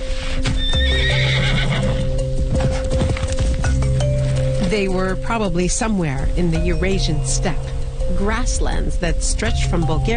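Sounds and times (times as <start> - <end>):
horse hooves clip-clopping: 0.4 - 5.2
horse whinnying with high-pitched neigh: 0.5 - 2.2
speech: 4.7 - 10.1.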